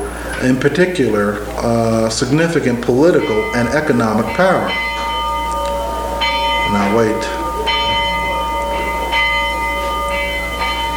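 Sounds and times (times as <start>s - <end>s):
bell ringing: 0.0s - 10.9s
speech: 0.4s - 4.8s, 6.7s - 7.4s.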